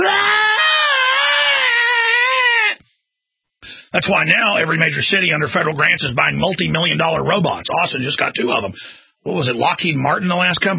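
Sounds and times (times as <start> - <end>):
person imitating a panicked scream: 0.0 - 2.8
speech: 4.0 - 10.7.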